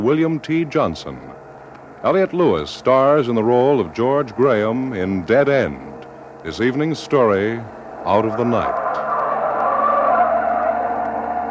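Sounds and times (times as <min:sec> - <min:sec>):
speech: 0:00.0 - 0:01.3, 0:02.0 - 0:08.8
speeding car engine roaring: 0:00.0 - 0:11.4
tyres skidding and screeching on a speeding car with no brakes: 0:08.0 - 0:11.4.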